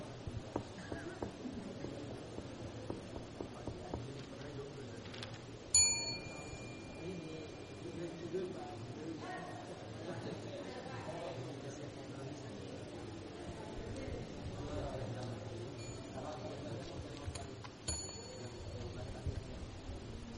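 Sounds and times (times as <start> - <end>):
murmur of people talking in a room: 0.0 - 20.3
desk bell being pressed: 5.8 - 7.7, 17.9 - 18.6.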